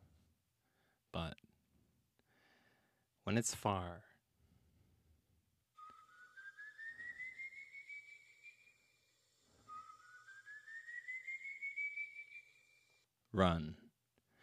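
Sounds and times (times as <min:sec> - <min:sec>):
faint hollow background: 0:00.0 - 0:14.4
speech: 0:03.3 - 0:04.1, 0:13.4 - 0:13.8
eerie human whistling of long rising notes: 0:05.8 - 0:13.0.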